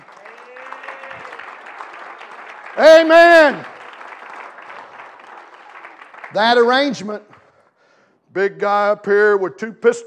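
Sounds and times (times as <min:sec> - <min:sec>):
church audience applause: 0:00.0 - 0:07.5
speech: 0:02.8 - 0:03.7, 0:06.3 - 0:07.3, 0:08.4 - 0:10.0.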